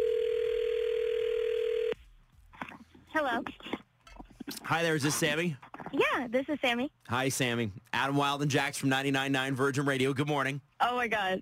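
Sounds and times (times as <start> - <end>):
telephone dial tone: 0.0 - 2.0
speech: 3.2 - 3.8, 4.7 - 11.4.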